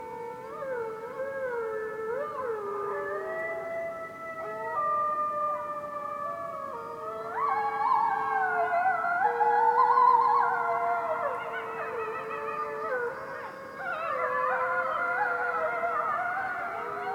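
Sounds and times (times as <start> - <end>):
wolves howling in a winter forest at night: 0.0 - 17.1.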